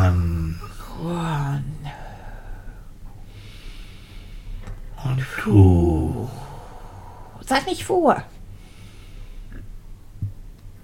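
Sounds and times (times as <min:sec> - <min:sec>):
low rumble: 0:00.0 - 0:10.8
soft breath drawn in during a breath-counting exercise: 0:01.9 - 0:04.7, 0:08.6 - 0:09.6
speech: 0:05.5 - 0:06.1, 0:07.5 - 0:08.3.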